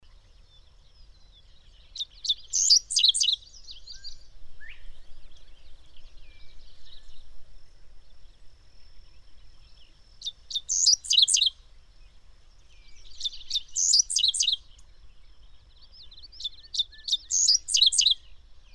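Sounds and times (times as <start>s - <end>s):
bird chirping and twittering: 0.3s - 7.3s, 8.8s - 18.7s.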